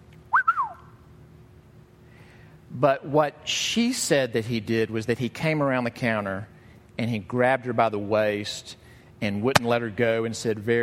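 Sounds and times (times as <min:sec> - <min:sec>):
wolf whistle: 0:00.3 - 0:01.0
speech: 0:02.8 - 0:10.8.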